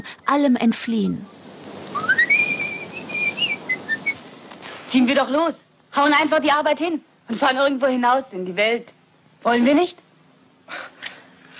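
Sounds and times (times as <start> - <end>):
speech: 0.0 - 1.4, 4.9 - 10.0
man whistling a cheerful tune: 1.9 - 4.2.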